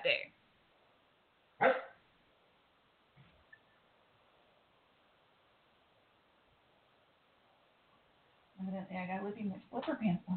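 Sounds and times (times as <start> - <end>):
dog barking: 1.6 - 2.0
speech: 9.0 - 10.3.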